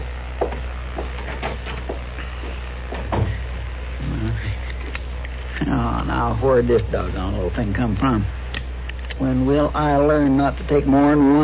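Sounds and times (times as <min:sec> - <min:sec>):
steady low hum: 0:00.0 - 0:11.4
door opening and closing: 0:00.4 - 0:02.1, 0:02.9 - 0:03.5
speech: 0:06.2 - 0:08.4, 0:09.2 - 0:11.4.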